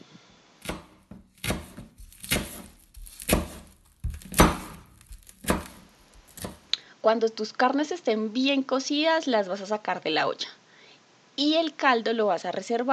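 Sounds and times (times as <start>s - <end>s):
knife chopping peeled arracacha root on cutting board: 0.6s - 6.7s
speech: 7.1s - 10.6s, 11.4s - 12.9s.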